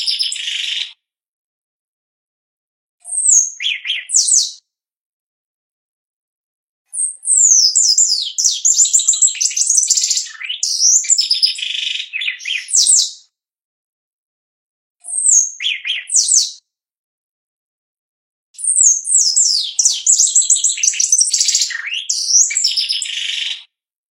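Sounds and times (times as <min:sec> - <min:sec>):
shiny cowbird song: 0:00.0 - 0:01.0, 0:03.1 - 0:04.6, 0:07.0 - 0:13.3, 0:15.1 - 0:16.6, 0:18.6 - 0:23.7.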